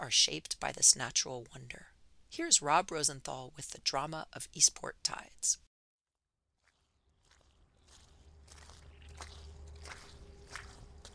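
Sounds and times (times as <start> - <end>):
speech: 0.1 - 5.6
footsteps squelching across wet mudflats: 6.6 - 11.1
low continuous rumble of wind: 7.6 - 11.1.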